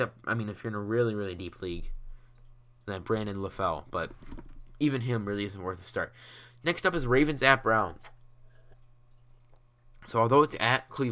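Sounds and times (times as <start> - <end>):
speech: 0.0 - 2.0, 2.9 - 8.2, 10.0 - 11.1
low steady electrical hum: 0.0 - 11.1
person sipping water: 2.0 - 2.8, 8.0 - 10.1.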